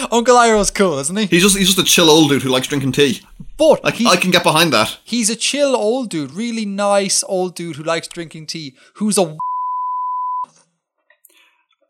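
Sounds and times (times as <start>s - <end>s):
speech: 0.0s - 9.5s
single-tone censor bleep covering a spoiler: 9.4s - 10.6s.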